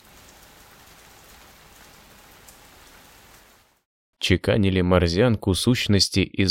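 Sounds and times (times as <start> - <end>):
light drizzle of fine raindrops falling on a surface: 0.0 - 3.9
speech: 4.3 - 6.4.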